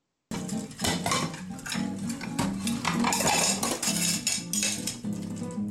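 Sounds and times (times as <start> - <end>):
dishes and cutlery clattering while being washed: 0.3 - 5.6.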